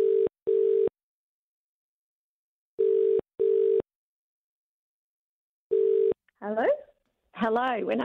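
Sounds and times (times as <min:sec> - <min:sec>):
telephone ringback tone of an outgoing call: 0:00.0 - 0:00.9, 0:02.8 - 0:03.8, 0:05.7 - 0:06.2
speech: 0:06.5 - 0:08.0.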